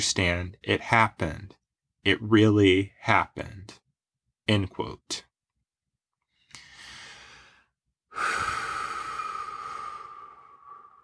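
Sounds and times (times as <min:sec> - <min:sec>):
speech: 0:00.0 - 0:03.8, 0:04.5 - 0:05.3
deep breath with sighing exhale: 0:06.3 - 0:11.0.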